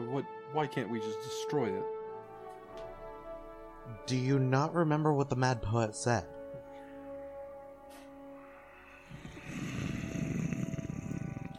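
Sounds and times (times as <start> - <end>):
speech: 0.2 - 2.0, 3.9 - 6.4
person growling like a cat: 9.1 - 11.5.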